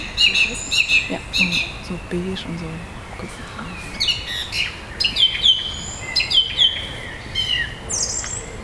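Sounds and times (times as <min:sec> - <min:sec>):
thrush singing: 0:00.0 - 0:05.6
soft outdoor hiss: 0:00.0 - 0:08.6
speech: 0:01.1 - 0:03.9.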